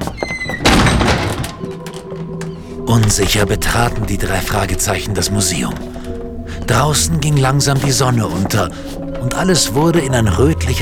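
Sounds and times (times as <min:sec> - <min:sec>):
solid thunk of an unlocked museum door being opened: 0:00.0 - 0:02.6
speech: 0:02.9 - 0:06.0, 0:06.7 - 0:10.7.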